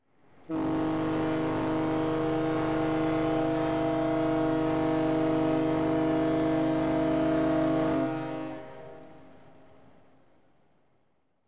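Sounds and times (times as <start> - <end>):
17,400-ton car ferry ship: 0.5 - 10.6.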